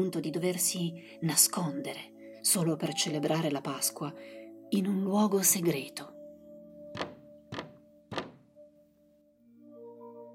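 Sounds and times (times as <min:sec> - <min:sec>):
speech: 0:00.0 - 0:06.2
dull knocks on the door of a secret hiding place: 0:07.0 - 0:08.5.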